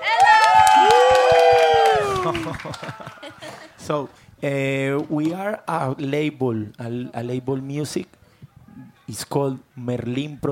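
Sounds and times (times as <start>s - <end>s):
voices cheering and whooping: 0.0s - 3.5s
audience clapping: 0.0s - 3.8s
laughter: 1.7s - 3.8s
speech: 2.6s - 3.2s, 3.8s - 8.2s, 8.8s - 10.4s.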